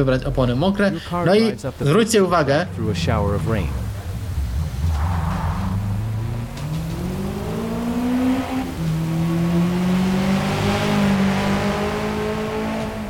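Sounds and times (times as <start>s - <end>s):
speech: 0.0s - 3.8s
aggressive race car engine revving between gear shifts: 1.7s - 13.0s.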